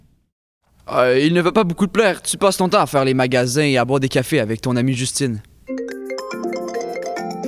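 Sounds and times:
speech: 0.9 - 5.8
mobile phone ringtone electronic melody: 5.7 - 7.4.

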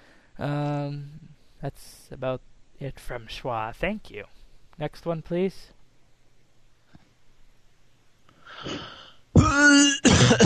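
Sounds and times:
faint breath: 0.0 - 0.4, 8.3 - 9.3
speech: 0.4 - 5.8, 8.6 - 9.0, 9.6 - 10.4
person coughing: 8.6 - 10.4.

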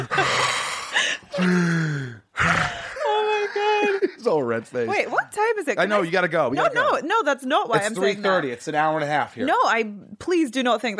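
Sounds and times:
person imitating heavy breathing with groaning gasps: 0.0 - 3.8
speech: 1.4 - 2.0, 4.5 - 10.9.

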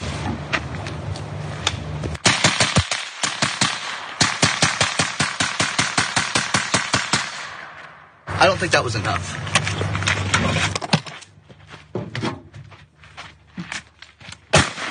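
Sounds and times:
low hum: 0.0 - 14.8
rapid automatic gunfire: 2.2 - 7.8, 14.5 - 14.8
speech: 8.4 - 10.8.

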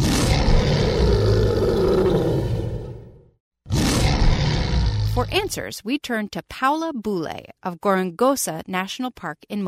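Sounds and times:
lion roaring: 0.0 - 5.2
speech: 5.3 - 9.6.

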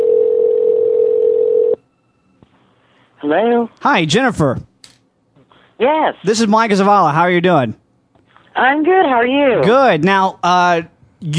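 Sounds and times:
steady loud telephone dial tone: 0.0 - 1.8
speech: 3.2 - 4.7, 5.8 - 7.8, 8.6 - 11.3.

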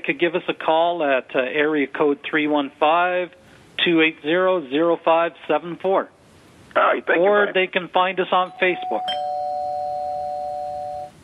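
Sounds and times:
speech: 0.1 - 6.2, 6.8 - 9.2
electronic doorbell ringing: 8.5 - 11.2.

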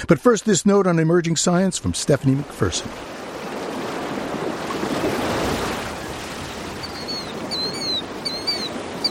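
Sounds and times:
speech: 0.0 - 3.2
ocean waves crashing: 0.0 - 9.0
faint bird chirps: 6.8 - 9.0.

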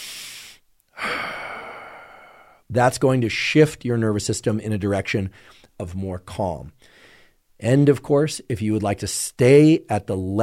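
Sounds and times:
active exhale while breathing for relaxation: 0.0 - 2.6
speech: 2.7 - 7.0, 7.6 - 10.4.

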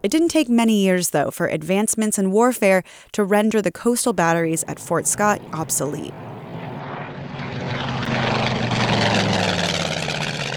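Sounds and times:
speech: 0.0 - 6.4
propeller airplane droning overhead: 4.2 - 10.5.

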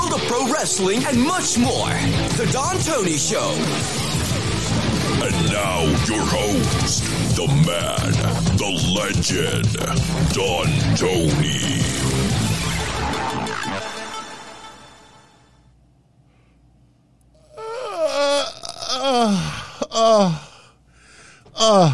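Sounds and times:
music: 0.0 - 15.7
speech: 0.3 - 4.2, 5.2 - 12.4
person exaggerated fake yawning: 17.4 - 20.7, 21.4 - 21.9.

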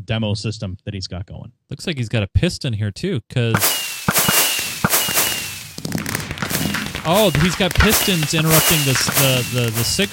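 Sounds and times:
speech: 0.1 - 3.8, 7.1 - 10.1
fireworks launched from dispensers in a video game popping: 3.6 - 10.1.

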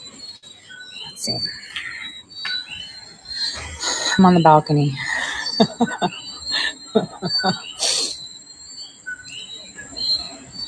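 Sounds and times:
birds chirping outside on a balcony: 0.0 - 10.6
speech: 1.2 - 1.9, 4.2 - 6.2, 6.9 - 7.7
laughter: 5.1 - 7.7.

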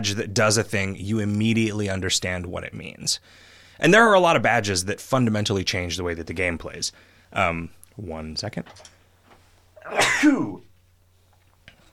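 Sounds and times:
speech: 0.0 - 9.0, 9.8 - 10.7
person sneezing: 9.8 - 10.7.

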